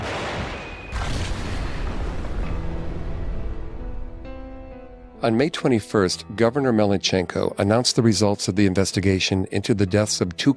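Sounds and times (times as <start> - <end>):
controlled demolition explosions: 0.0 - 5.2
deep sustained rumble from demolition: 1.0 - 5.4
speech: 5.2 - 10.5.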